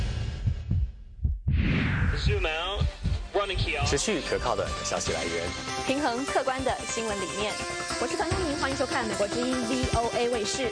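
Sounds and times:
deep booming heartbeat thumps in lub-dub pairs: 0.0s - 4.8s
rising whoosh: 1.4s - 3.8s
speech: 2.2s - 2.8s, 3.4s - 10.7s.

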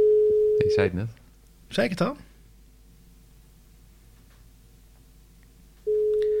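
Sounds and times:
telephone ringing tone while a guest is being called: 0.0s - 0.8s, 5.9s - 6.3s
speech: 0.6s - 2.3s.

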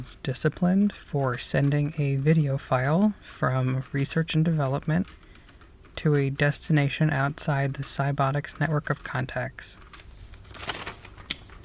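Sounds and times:
speech: 0.0s - 5.2s, 6.0s - 9.8s
sheet of paper rustling and crinkling as it is handled: 9.8s - 11.6s.

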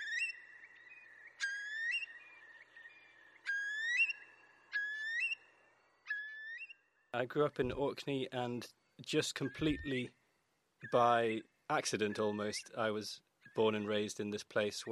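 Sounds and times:
Eurasian curlew whistled calls in Orkney: 0.0s - 7.0s, 9.2s - 10.2s, 10.8s - 14.1s
speech: 7.1s - 10.2s, 10.8s - 14.8s.

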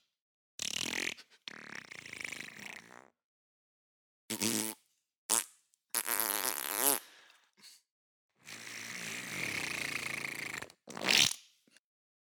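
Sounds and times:
farts: 0.6s - 3.1s, 4.3s - 7.1s, 8.7s - 11.4s.

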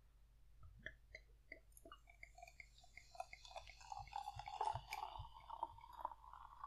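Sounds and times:
liquid being poured into a glass: 1.5s - 6.6s.

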